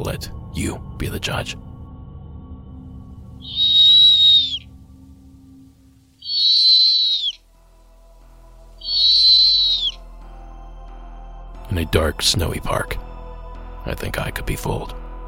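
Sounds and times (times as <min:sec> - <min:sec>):
speech: 0:00.0 - 0:01.7, 0:11.8 - 0:13.0, 0:13.8 - 0:15.0
snowy owl whistle-like calls: 0:03.4 - 0:04.7, 0:06.2 - 0:07.4, 0:08.8 - 0:10.0.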